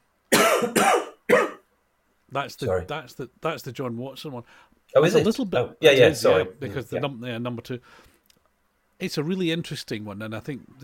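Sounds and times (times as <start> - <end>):
harsh coughs: 0.3 - 1.6
speech: 2.3 - 8.1, 9.0 - 10.8.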